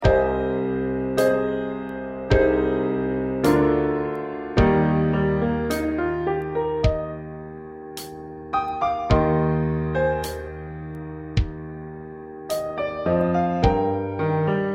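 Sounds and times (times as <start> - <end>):
piano: 0.0 - 14.7
drum: 6.8 - 7.1, 9.1 - 9.3.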